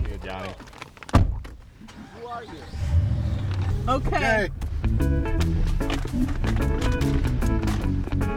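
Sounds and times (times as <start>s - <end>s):
speech: 0.2s - 0.8s, 2.3s - 3.0s, 3.9s - 5.1s
truck door slamming shut: 1.0s - 4.8s
truck engine rumbling as the vehicle pulls away: 1.8s - 8.2s.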